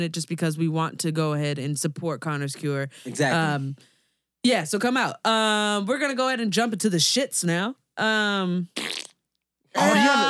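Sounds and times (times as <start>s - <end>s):
speech: 0.0s - 9.0s, 9.8s - 10.2s
fart sound effects: 8.8s - 9.2s.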